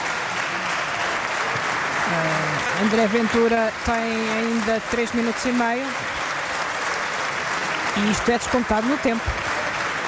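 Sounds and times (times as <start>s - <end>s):
parliamentary bench applauding its party leader during a debate: 0.0s - 10.0s
speech: 2.1s - 6.2s, 8.0s - 9.5s.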